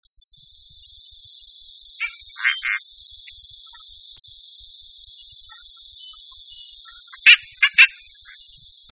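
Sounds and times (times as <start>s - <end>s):
fasciata singing in French Guiana: 0.8s - 4.0s, 5.0s - 8.9s.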